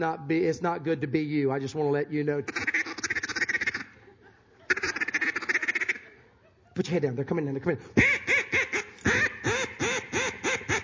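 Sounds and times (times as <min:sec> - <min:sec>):
speech: 0:00.0 - 0:02.9, 0:06.8 - 0:08.1
duck call blown as a comeback call in duck hunting: 0:02.5 - 0:04.0, 0:04.7 - 0:06.1, 0:08.0 - 0:10.8.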